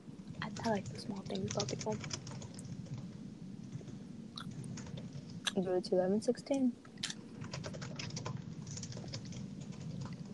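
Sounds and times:
typing on a computer keyboard while someone writes: 0.4s - 3.1s, 7.3s - 10.3s
speech: 0.6s - 2.3s, 5.6s - 6.9s.

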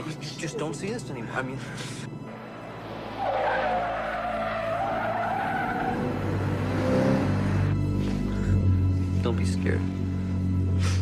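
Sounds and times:
road noise: 0.0s - 10.5s
speech: 0.3s - 2.2s, 9.3s - 10.0s
car engine roaring: 2.1s - 9.1s
car tires squealing: 2.2s - 7.8s.

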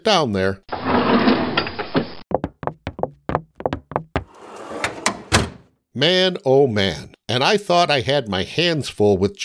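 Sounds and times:
speech: 0.0s - 1.3s, 6.0s - 9.4s
bottom desk drawer with hanging files sliding: 0.7s - 1.8s, 4.2s - 5.7s
sharp wooden knocks and thumps: 2.3s - 5.7s.

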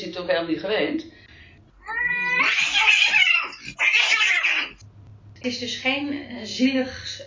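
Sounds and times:
speech: 0.0s - 1.2s, 5.4s - 7.2s
angry female cat yowling as she jumps on another cat: 1.8s - 4.8s.

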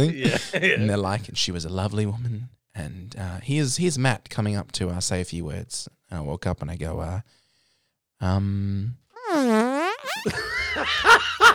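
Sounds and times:
laughter: 0.0s - 0.8s, 10.2s - 11.5s
speech: 0.0s - 7.4s, 8.2s - 9.0s, 10.2s - 11.5s
fart sound effect: 9.2s - 10.4s.

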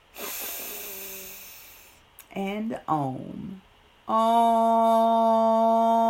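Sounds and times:
deep in-breath during a guided breathing exercise: 0.2s - 2.0s
speech: 2.4s - 6.0s.

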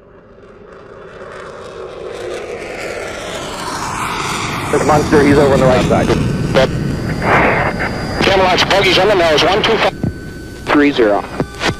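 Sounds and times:
airplane engine droning in the cabin in flight over the North Atlantic: 0.0s - 11.7s
speech: 4.7s - 7.4s, 8.4s - 9.9s, 10.8s - 11.3s.

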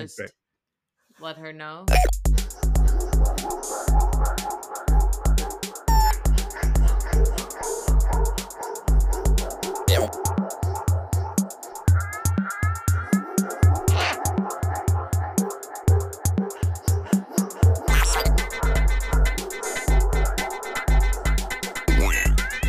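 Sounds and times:
speech: 0.0s - 0.4s, 1.2s - 5.6s
agitated female dog barking and yipping: 2.5s - 22.6s
agitated female dog whimpering: 5.4s - 18.4s.

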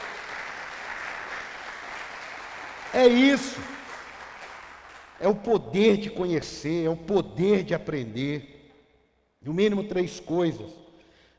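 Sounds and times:
audience applause during a talk: 0.0s - 5.2s
speech: 2.9s - 3.8s, 5.2s - 8.5s, 9.4s - 10.8s.

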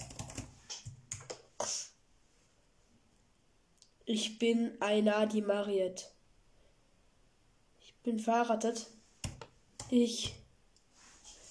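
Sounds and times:
casual typing on a computer keyboard: 0.0s - 1.4s, 9.2s - 10.4s
speech: 4.1s - 6.2s, 8.0s - 9.0s, 9.9s - 10.4s.

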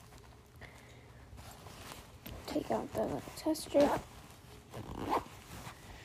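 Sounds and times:
speech: 2.5s - 4.1s
zipper being pulled closed on a small zippered container: 4.7s - 5.8s.

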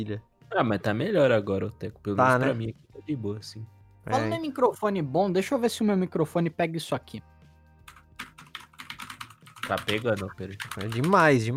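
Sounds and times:
speech: 0.0s - 7.3s, 9.7s - 11.5s
typing on a new mechanical keyboard: 7.9s - 11.3s.

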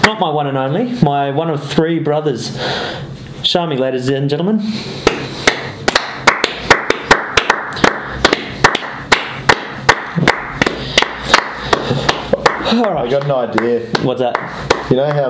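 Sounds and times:
speech: 0.1s - 5.4s, 12.7s - 15.2s
one person clapping hands: 5.0s - 15.2s.

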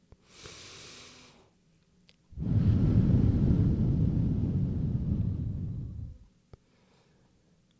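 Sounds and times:
long steady exhale blown through pursed lips: 0.2s - 1.6s, 2.4s - 7.4s
soft brief inhale: 0.2s - 1.6s, 2.4s - 7.5s.

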